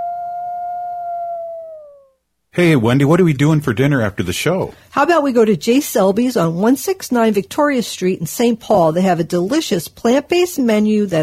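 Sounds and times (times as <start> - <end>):
wolf howling: 0.0 - 2.2
speech: 2.6 - 11.2.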